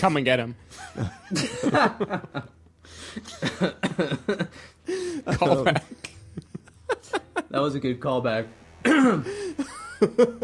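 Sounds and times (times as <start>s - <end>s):
speech: 0.0s - 6.2s, 7.0s - 10.4s
laughter: 0.7s - 7.5s, 8.9s - 10.4s
person coughing: 8.8s - 9.4s
throat clearing: 8.9s - 9.3s.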